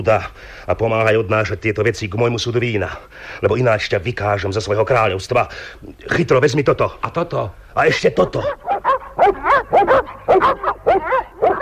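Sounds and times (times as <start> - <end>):
speech: 0.0 - 11.6
pack of dogs barking, set on a chase: 8.3 - 11.6.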